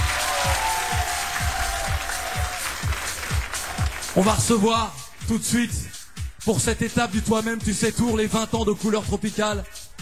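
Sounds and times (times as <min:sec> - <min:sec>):
audience applause at a festival: 0:00.0 - 0:04.2
speech: 0:04.2 - 0:09.8.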